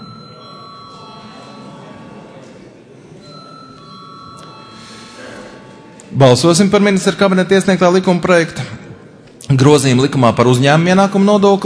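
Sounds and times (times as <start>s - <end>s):
parliament chamber electric bell ringing before a vote: 0.0s - 2.3s, 3.2s - 6.2s
murmur of room noise in a parliament chamber: 0.0s - 11.6s
speech: 6.1s - 8.7s, 9.5s - 11.6s.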